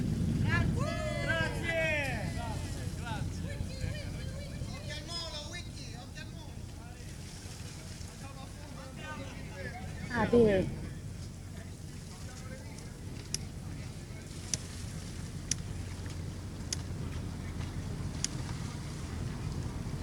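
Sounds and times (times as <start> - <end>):
steady wind buffeting the microphone on a waterfront: 0.0 - 20.0
lively voices and calls at a vintage sailboat parade: 0.4 - 15.9.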